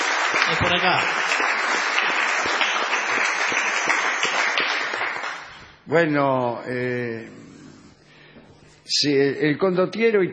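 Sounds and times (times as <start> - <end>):
small group clapping: 0.0 - 5.7
speech: 0.5 - 1.6, 5.9 - 7.5, 8.9 - 10.3.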